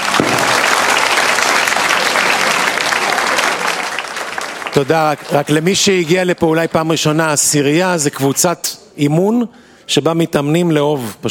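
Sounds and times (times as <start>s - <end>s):
room full of people clapping steadily and loudly: 0.0s - 6.4s
speech: 4.8s - 11.2s.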